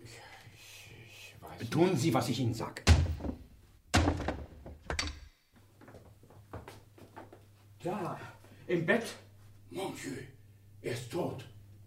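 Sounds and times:
speech: 1.6s - 2.9s, 7.8s - 11.5s
heavy thuds on a locked wooden door: 2.9s - 4.9s.

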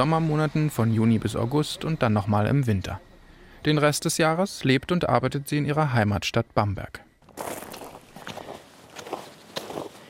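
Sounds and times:
speech: 0.0s - 7.5s
footsteps of people setting off on a hike: 7.2s - 10.0s.

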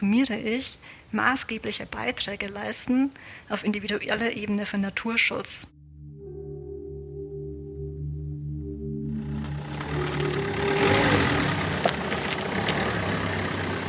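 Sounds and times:
speech: 0.0s - 5.8s
livestock farmer's vehicle engine driving by the Szczecin Lagoon: 8.6s - 13.8s.

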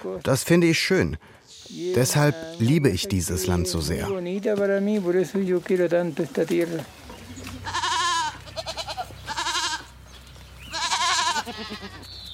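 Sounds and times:
speech: 0.0s - 7.1s
faint farmyard background: 0.0s - 12.3s
goats bleating on a farm: 1.5s - 2.8s, 7.2s - 10.0s, 10.6s - 12.2s.

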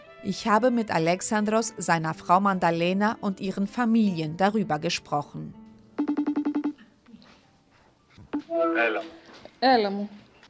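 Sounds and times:
speech: 0.2s - 5.6s, 8.6s - 10.2s
incoming FaceTime video call ringing: 6.0s - 6.8s, 8.4s - 9.2s.

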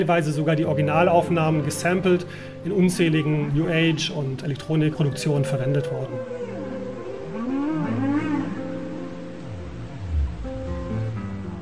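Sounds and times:
speech: 0.0s - 6.4s
steady hiss of noise: 0.0s - 11.6s
whale song recorded underwater: 4.7s - 11.2s.

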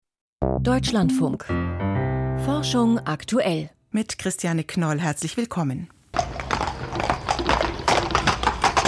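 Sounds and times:
speech: 0.4s - 1.9s, 2.5s - 6.3s
horse galloping past, hooves clip-clopping: 6.2s - 8.8s.

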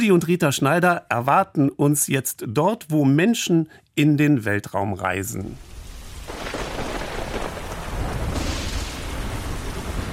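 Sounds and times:
speech: 0.0s - 5.7s
rainwater splashing and streaming over surfaces: 5.6s - 10.1s
steady heavy rain: 5.6s - 10.1s.

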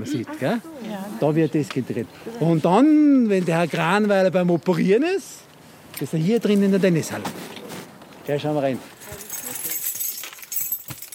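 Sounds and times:
speech: 0.0s - 7.5s, 8.3s - 9.0s
keys jingling and clinking: 9.0s - 11.1s.

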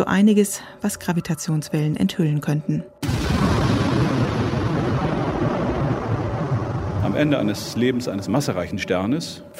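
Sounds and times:
speech: 0.0s - 3.2s, 7.1s - 9.5s
explosion sound effect with low rumble: 3.0s - 8.6s.

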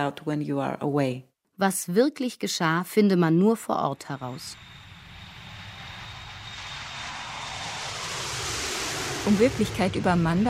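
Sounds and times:
speech: 0.0s - 4.8s, 9.2s - 10.4s
airplane engine droning in flight: 4.2s - 10.4s.

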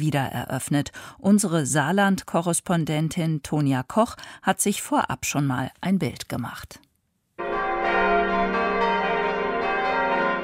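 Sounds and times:
speech: 0.0s - 6.8s
abbey church bells ringing in Tholey Saarland Germany: 7.4s - 10.4s.

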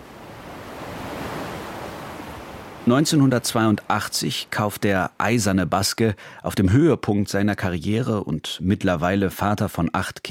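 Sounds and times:
ocean surf at the steep rocky coast of San Sebastian: 0.0s - 5.5s
speech: 2.8s - 10.2s.

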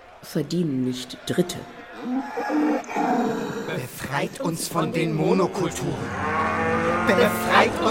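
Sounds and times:
speech: 0.2s - 7.9s
cow mooing: 2.0s - 3.7s, 6.0s - 7.9s.

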